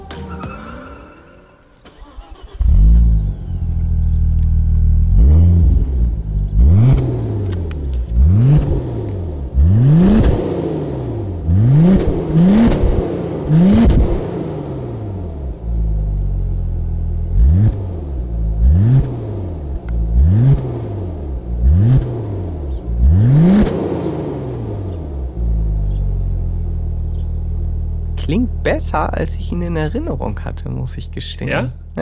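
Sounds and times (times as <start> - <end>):
turbocharged Audi RS4 B5 engine revving: 1.9 - 30.6
speech: 28.7 - 32.0.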